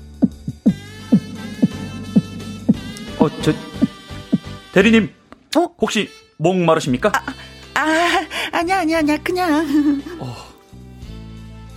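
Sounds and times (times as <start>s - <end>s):
quickening heartbeat sound effect: 0.0s - 4.6s
low hum: 0.0s - 4.8s
speech: 3.2s - 3.8s, 4.8s - 10.5s.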